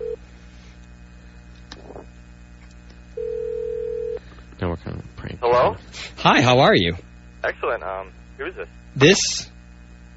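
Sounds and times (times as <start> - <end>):
steady telephone line tone: 3.1 - 4.2
speech: 5.5 - 9.5.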